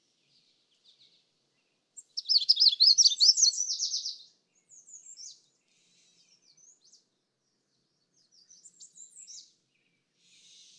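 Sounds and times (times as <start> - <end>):
Magnolia warbler singing: 0.0 - 10.7.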